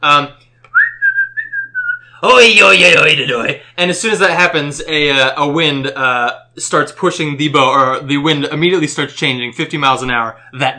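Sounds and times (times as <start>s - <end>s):
speech: 0.0s - 0.4s, 2.2s - 10.7s
person whistling a tune on a boat while lowering the anchor: 0.7s - 2.1s.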